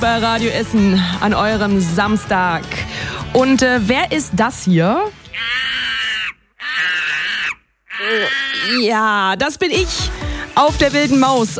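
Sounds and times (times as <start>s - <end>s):
speech: 0.0s - 2.8s, 3.4s - 5.2s, 8.0s - 11.5s
monkey screeching: 5.3s - 9.0s.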